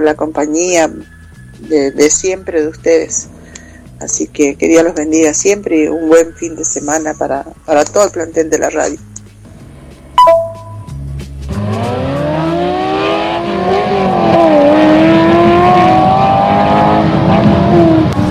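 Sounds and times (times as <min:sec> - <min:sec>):
speech: 0:00.0 - 0:03.4, 0:04.0 - 0:09.1
race car engines revving and racing at a motor racing event in Charata: 0:11.5 - 0:18.3.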